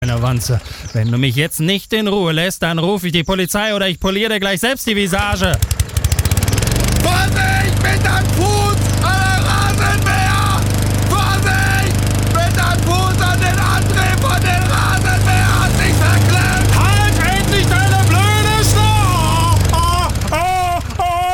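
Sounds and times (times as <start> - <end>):
lawn mower running: 0.0 - 1.0, 5.0 - 21.3
speech: 0.1 - 5.8
laughter: 6.9 - 21.3.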